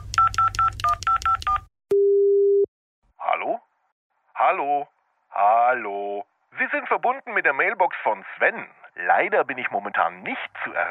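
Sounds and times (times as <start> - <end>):
telephone keypad tones as a number is dialed: 0.0 - 2.7
speech: 4.5 - 10.8.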